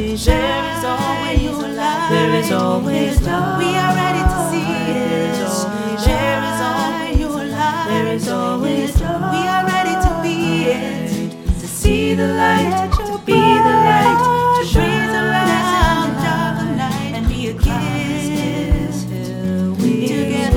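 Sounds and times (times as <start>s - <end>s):
choir singing: 0.2s - 19.2s, 19.8s - 20.5s
band playing: 0.3s - 16.6s.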